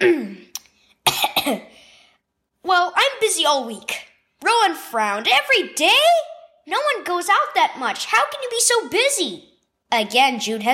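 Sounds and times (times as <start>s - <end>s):
person clearing throat: 0.0s - 0.5s, 1.1s - 1.7s
person coughing: 0.0s - 0.5s, 1.1s - 1.8s
speech: 3.5s - 10.7s.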